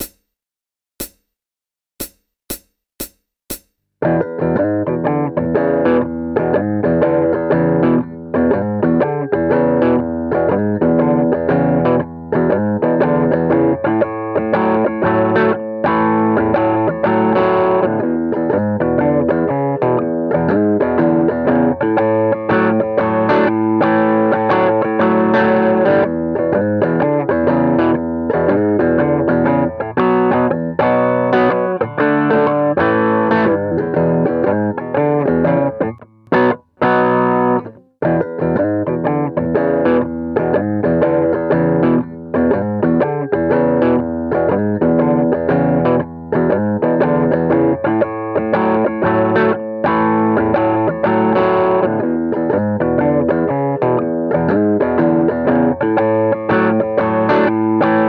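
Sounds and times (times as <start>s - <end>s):
blues rock music: 4.0s - 58.0s.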